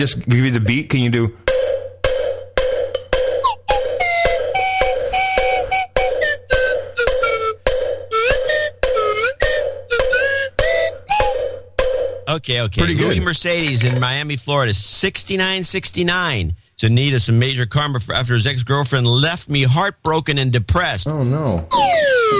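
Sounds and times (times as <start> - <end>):
speech: 0.0 - 1.4, 12.4 - 22.3
cowbell hits: 1.5 - 5.0, 6.0 - 8.2, 8.8 - 12.3
slide whistle swooping: 3.4 - 12.0, 21.7 - 22.3.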